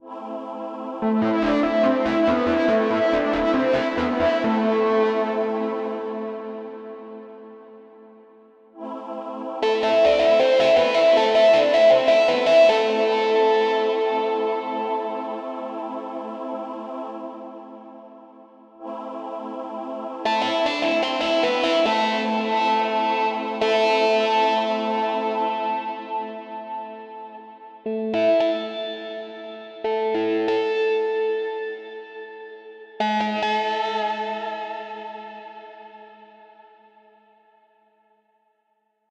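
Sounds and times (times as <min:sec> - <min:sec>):
distortion: 0:01.0 - 0:08.6, 0:09.6 - 0:16.2, 0:20.2 - 0:37.0.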